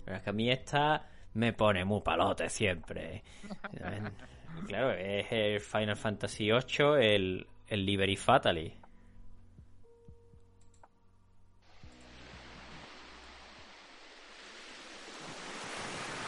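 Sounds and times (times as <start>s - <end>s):
speech: 0.1s - 8.8s
laughter: 3.5s - 4.3s
ocean waves: 11.7s - 16.2s.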